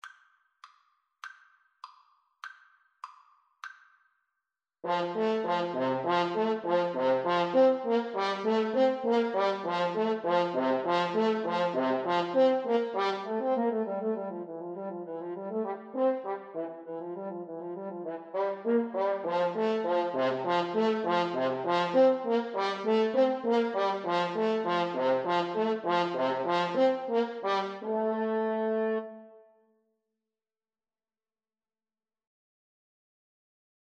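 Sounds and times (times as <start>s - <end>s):
French horn duet: 4.8s - 29.4s.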